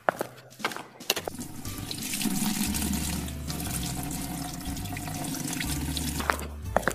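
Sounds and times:
tap water running into a sink as hands are washed: 1.2s - 6.4s.

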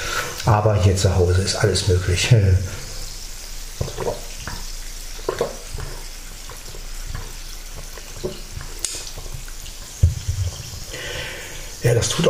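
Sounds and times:
speech: 0.4s - 2.8s
water pouring into a glass to the brim: 2.7s - 12.2s.

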